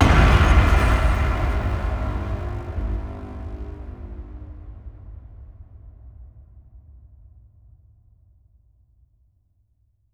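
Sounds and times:
crunchy string cinematic impact: 0.0 - 5.8.

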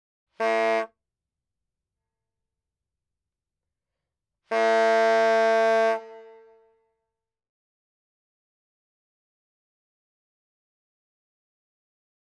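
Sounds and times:
horn sounding: 4.5 - 6.7.

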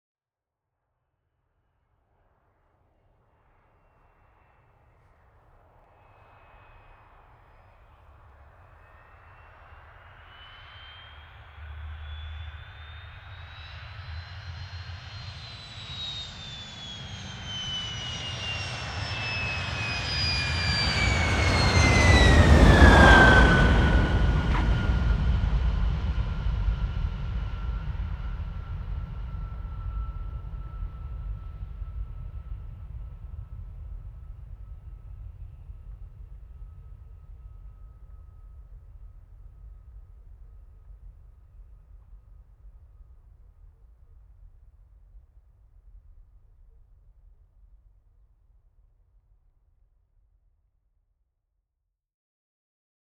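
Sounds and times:
MiG15 UTI aircraft landing: 11.6 - 38.6.

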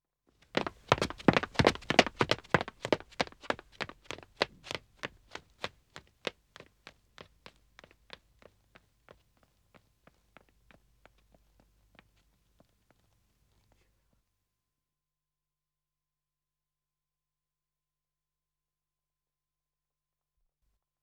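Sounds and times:
two men running footsteps on dead acoustic wood: 0.4 - 11.2.

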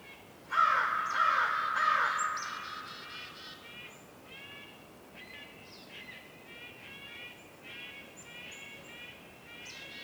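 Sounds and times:
crow cawing with echo in a winter forest in the North Laurentian woods, Canada: 0.5 - 3.8.

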